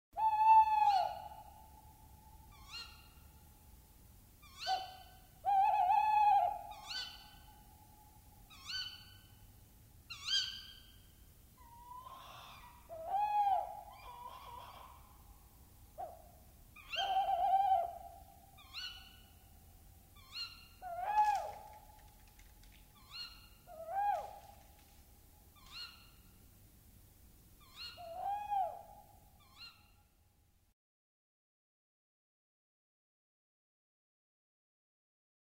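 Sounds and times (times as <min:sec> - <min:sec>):
tawny owl: 0:00.2 - 0:03.5, 0:04.4 - 0:09.4, 0:10.1 - 0:11.0, 0:11.6 - 0:26.4, 0:27.6 - 0:30.0.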